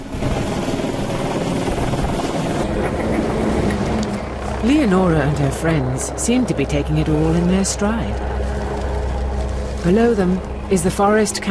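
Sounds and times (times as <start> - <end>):
helicopter rotor blades whirring: 0.0 - 11.4
speech: 4.6 - 8.4, 9.8 - 11.4.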